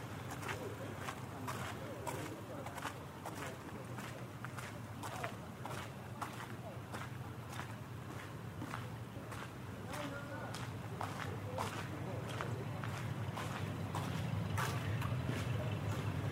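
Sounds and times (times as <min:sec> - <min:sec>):
footsteps crunching along an outdoor canal towpath: 0:00.2 - 0:16.3.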